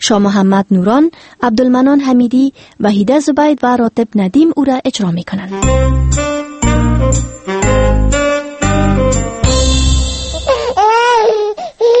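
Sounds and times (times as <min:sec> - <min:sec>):
speech: 0:00.0 - 0:06.3, 0:07.1 - 0:07.5
short bright musical jingle of repeated chords: 0:05.5 - 0:10.9
baby crying: 0:10.4 - 0:11.9.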